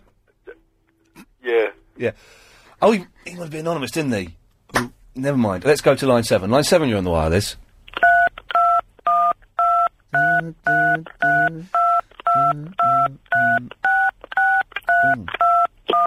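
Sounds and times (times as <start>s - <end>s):
speech: 1.5s - 7.6s
touch-tone telephone dialing a long number: 8.0s - 16.0s.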